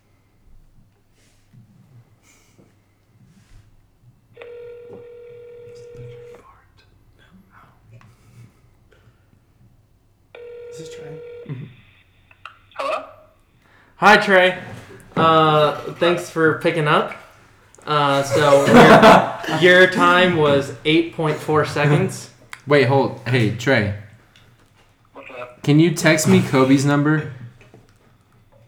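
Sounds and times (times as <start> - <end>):
outgoing phone call ringback tones: 4.4 - 6.4, 10.4 - 13.0
speech: 14.0 - 17.2, 17.9 - 24.0, 25.6 - 27.4
laughter: 14.0 - 24.0, 25.2 - 27.6.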